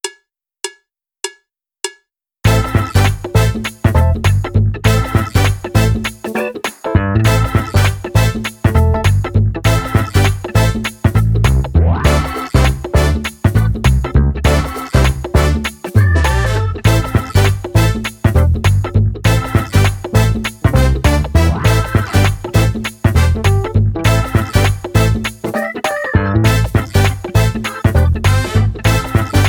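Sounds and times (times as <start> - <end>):
simple funky drumless music: 2.4 - 29.4.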